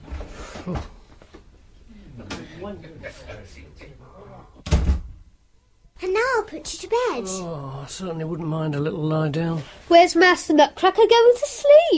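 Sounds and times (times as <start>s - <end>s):
speech: 0.7s - 1.0s, 2.6s - 4.6s, 6.0s - 11.9s
front door shutting with a heavy thud: 4.6s - 5.2s.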